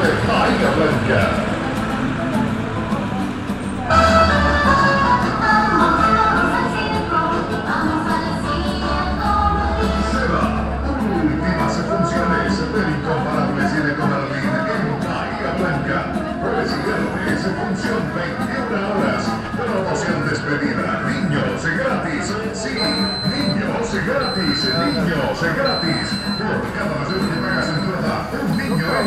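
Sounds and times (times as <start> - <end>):
low engine rumble: 0.0 - 26.0
many voices talking on a busy pedestrian street: 0.0 - 29.0
thin high repeated beep: 22.8 - 29.0.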